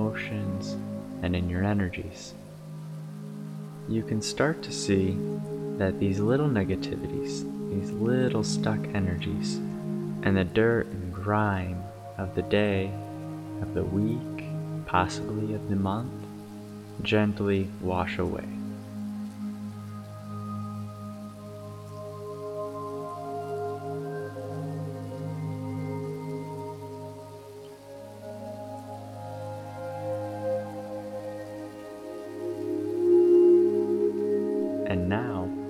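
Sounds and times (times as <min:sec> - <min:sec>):
light rain falling: 0:00.0 - 0:35.6
sustained droning musical tones: 0:00.0 - 0:35.6
speech: 0:00.2 - 0:02.4, 0:03.9 - 0:13.0, 0:13.6 - 0:14.3, 0:14.9 - 0:16.2, 0:17.0 - 0:18.6.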